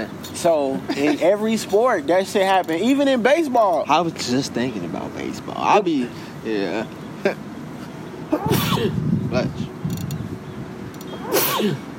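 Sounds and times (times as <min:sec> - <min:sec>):
speech: 0:00.4 - 0:07.5, 0:08.3 - 0:09.7, 0:11.6 - 0:11.9
sneeze: 0:08.4 - 0:08.9, 0:11.2 - 0:11.9.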